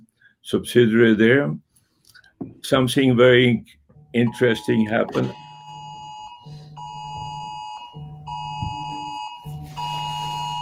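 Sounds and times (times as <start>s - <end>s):
speech: 0.4s - 1.6s, 2.4s - 5.4s
electronic alarm system beeping: 4.2s - 10.6s.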